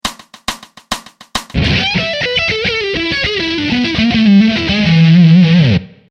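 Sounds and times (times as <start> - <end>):
fast blues lick: 0.0 - 6.0.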